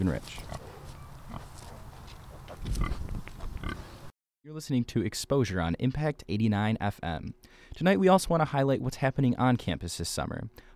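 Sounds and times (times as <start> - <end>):
speech: 0.0 - 0.6, 4.5 - 10.7
piglets and young female pigs grunting while nesting and rooting: 0.3 - 4.0.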